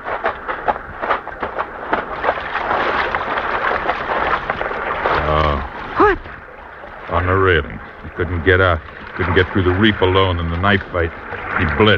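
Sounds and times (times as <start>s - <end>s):
steady wash of lapping water from a small boat: 0.0s - 11.9s
speech: 7.4s - 11.9s.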